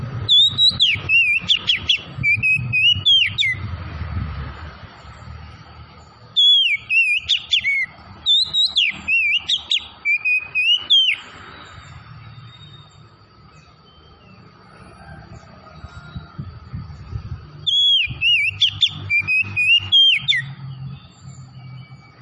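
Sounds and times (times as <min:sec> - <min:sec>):
Tretes oriental magpie-robin singing vigorously: 0:00.1 - 0:03.7, 0:06.0 - 0:14.5, 0:17.1 - 0:22.2.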